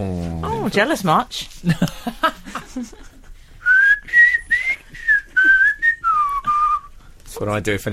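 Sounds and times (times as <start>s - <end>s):
speech: 0.0s - 2.1s, 7.4s - 7.9s
faint noise: 0.0s - 7.9s
laughter: 1.6s - 3.4s
person whistling a pop melody: 3.6s - 6.9s.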